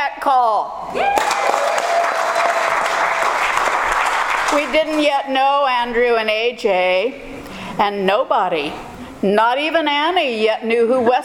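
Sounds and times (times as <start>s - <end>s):
speech: 0.2s - 1.3s, 4.5s - 11.2s
church audience applause at a Sunday service: 1.2s - 4.8s.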